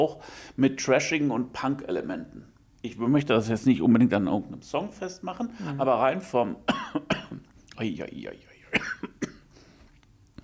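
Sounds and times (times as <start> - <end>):
speech: 0.0 - 7.2, 7.8 - 9.1
person coughing: 6.7 - 7.4, 8.7 - 9.5.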